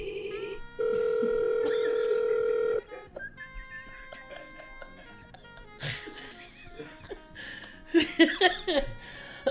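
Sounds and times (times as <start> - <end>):
telephone dial tone: 0.1 - 2.9
light laughter: 1.6 - 2.2, 2.8 - 9.0.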